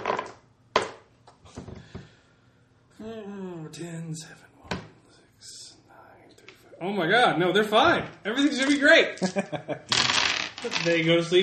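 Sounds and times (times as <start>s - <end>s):
dice rolled in a tabletop game clattering onto a wooden table: 0.0s - 1.0s, 9.9s - 11.4s
speech: 3.0s - 4.5s, 6.8s - 11.4s.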